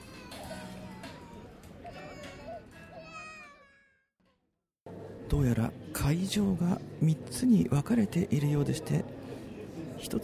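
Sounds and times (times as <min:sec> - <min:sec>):
murmur of a busy outdoor crowd: 0:00.0 - 0:03.3, 0:08.8 - 0:10.2
child crying loudly at outdoor festival: 0:00.1 - 0:04.0
speech: 0:05.3 - 0:09.2, 0:10.0 - 0:10.2.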